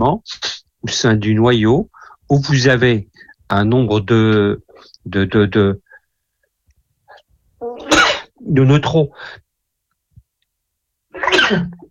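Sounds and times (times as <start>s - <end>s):
speech: 0.0s - 5.8s, 8.4s - 9.4s, 11.2s - 11.8s
sneeze: 7.8s - 8.3s, 11.1s - 11.8s.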